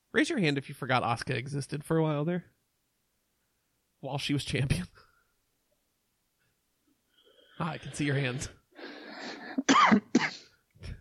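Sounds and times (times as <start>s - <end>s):
speech: 0.2s - 2.6s, 4.0s - 5.0s, 7.6s - 8.6s, 9.2s - 10.9s
harsh coughing and choking: 7.6s - 10.9s.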